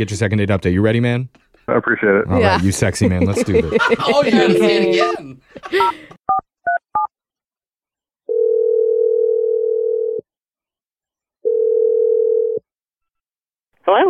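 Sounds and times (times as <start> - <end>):
speech: 0.0 - 6.2, 13.9 - 14.0
laughter: 2.3 - 6.2
telephone ringing tones: 8.3 - 10.2, 11.4 - 12.6.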